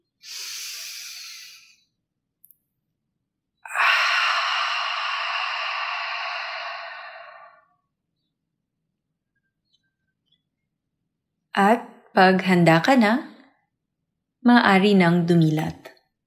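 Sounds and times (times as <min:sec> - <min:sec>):
airy breaths during a guided breathing exercise: 0:00.2 - 0:01.9, 0:03.6 - 0:07.8
speech: 0:11.6 - 0:13.3, 0:14.4 - 0:15.9.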